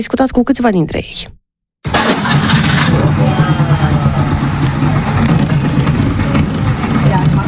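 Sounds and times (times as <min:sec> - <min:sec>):
speech: 0:00.0 - 0:01.4
Trabant 601 car engine starting and running: 0:01.9 - 0:07.4.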